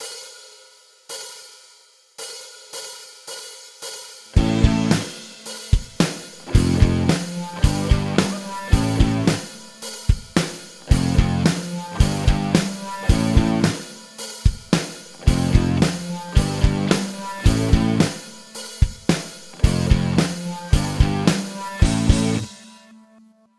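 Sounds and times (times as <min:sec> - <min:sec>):
guitar: 0:04.3 - 0:23.4
band playing a riff: 0:04.4 - 0:22.7.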